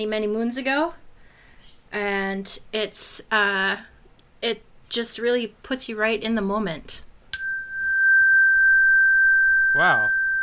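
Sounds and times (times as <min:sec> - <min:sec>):
speech: 0:00.0 - 0:01.0, 0:01.9 - 0:07.1, 0:09.8 - 0:10.2
wind chime ringing in clear pure tones: 0:07.4 - 0:10.4.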